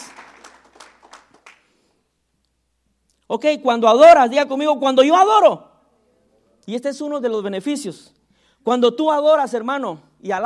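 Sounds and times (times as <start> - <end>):
church audience clapping: 0.0 - 1.8
speech: 3.3 - 5.7, 6.7 - 10.4.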